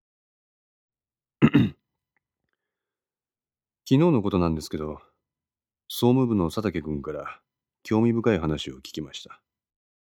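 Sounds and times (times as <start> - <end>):
gruff throat clearing: 1.4 - 1.8
speech: 3.9 - 5.1, 5.9 - 9.4.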